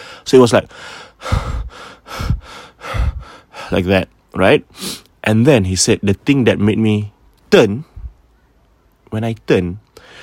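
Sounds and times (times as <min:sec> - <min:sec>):
voice mimicking a man's heavy panting as if jogging: 0:00.0 - 0:03.8
speech: 0:00.3 - 0:01.5, 0:03.7 - 0:07.9, 0:09.1 - 0:09.8.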